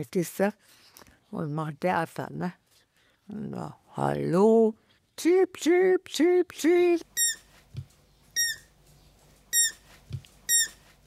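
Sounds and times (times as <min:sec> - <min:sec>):
speech: 0:00.0 - 0:02.6, 0:03.3 - 0:07.4
hungry hand-reared roe deer fawns squeaking for food: 0:07.1 - 0:07.5, 0:08.4 - 0:08.7, 0:09.5 - 0:09.8, 0:10.5 - 0:10.8.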